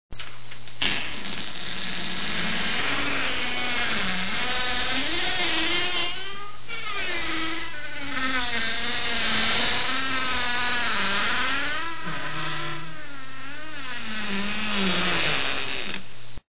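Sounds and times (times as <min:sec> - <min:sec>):
creaking: 0:00.1 - 0:16.0.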